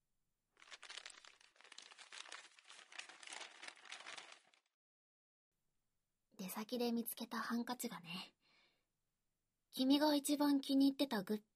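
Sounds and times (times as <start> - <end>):
paper bag crinkling as it is opened: 0.6 - 4.7
speech: 6.4 - 8.4, 9.8 - 11.5.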